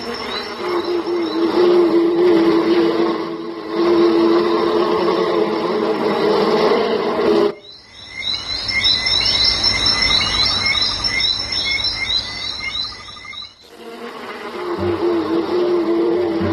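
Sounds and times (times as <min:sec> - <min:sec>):
honeybees buzzing around a hive entrance: 0:00.0 - 0:08.6, 0:13.4 - 0:16.5
dense rhythmic insect chirping: 0:00.0 - 0:16.5.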